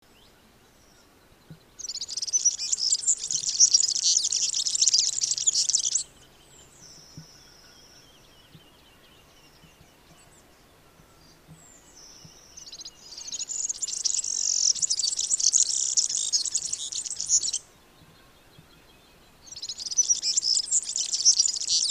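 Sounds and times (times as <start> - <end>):
serin bird calling: 0.4 - 10.2, 11.3 - 17.7, 19.4 - 21.8.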